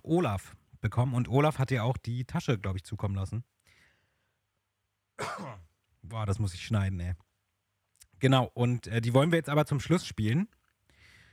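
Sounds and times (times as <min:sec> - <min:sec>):
speech: 0:00.1 - 0:03.6, 0:05.2 - 0:07.3, 0:08.2 - 0:10.6
person coughing: 0:05.2 - 0:05.7.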